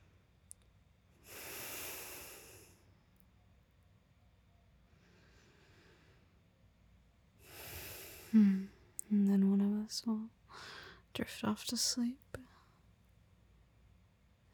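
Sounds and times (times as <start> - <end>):
two people breathing slowly together: 1.2 - 3.0, 4.9 - 6.5, 7.4 - 9.0, 10.5 - 11.1
speech: 9.9 - 10.6, 11.2 - 12.2.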